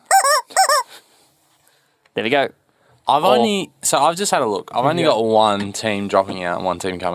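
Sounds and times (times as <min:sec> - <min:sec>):
squeezed toy chicken squawks: 0:00.0 - 0:00.9
speech: 0:02.2 - 0:07.1.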